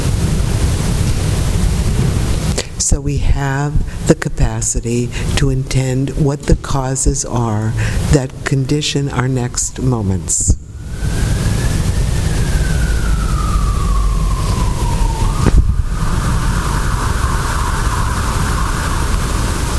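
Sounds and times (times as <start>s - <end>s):
constant rumbling wash of traffic or wind noise: 0.0s - 19.7s
speech: 3.0s - 11.4s
emergency vehicle siren wailing: 10.5s - 19.7s.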